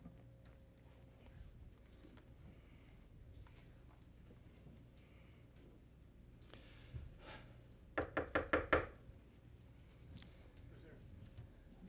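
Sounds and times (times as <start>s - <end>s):
sharp raps knocking on a door: 8.0s - 9.0s.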